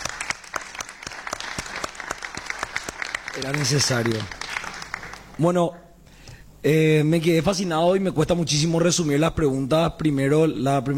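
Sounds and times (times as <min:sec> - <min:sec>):
audience applause in a hall: 0:00.0 - 0:05.4
speech: 0:03.4 - 0:04.4, 0:05.4 - 0:05.8, 0:06.6 - 0:10.9.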